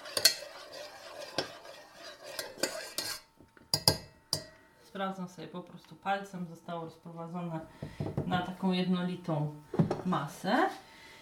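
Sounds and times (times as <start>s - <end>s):
spoon stirring batter, scraping and clinking against the bowl: 0.0s - 4.6s
speech: 5.0s - 10.8s.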